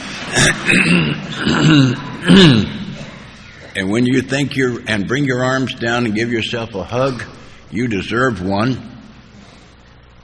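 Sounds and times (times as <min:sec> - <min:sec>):
short cough-like bursts: 0:00.0 - 0:03.8
gruff throat clearing: 0:00.2 - 0:03.7
speech: 0:00.3 - 0:02.8, 0:03.8 - 0:08.9.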